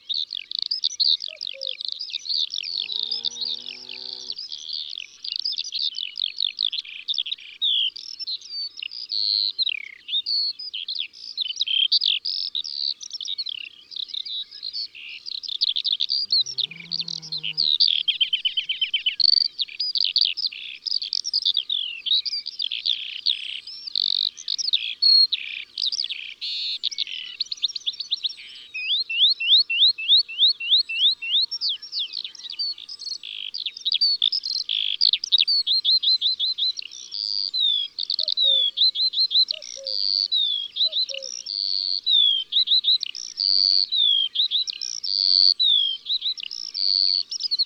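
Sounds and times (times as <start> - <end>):
birds singing in the countryside: 0.0 - 47.6
Eurasian skylark singing: 13.5 - 47.6.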